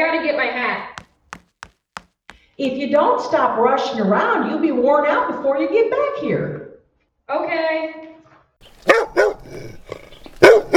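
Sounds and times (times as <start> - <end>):
speech: 0.0 - 1.0, 2.6 - 6.7, 7.3 - 8.1, 8.8 - 9.9
dog barking: 8.8 - 10.7
dog low growl: 9.4 - 10.4.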